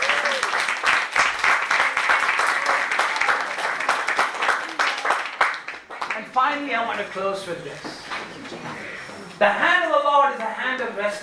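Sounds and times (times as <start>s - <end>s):
crowd clapping steadily and enthusiastically: 0.0s - 7.3s
speech: 6.5s - 8.7s, 9.4s - 11.2s.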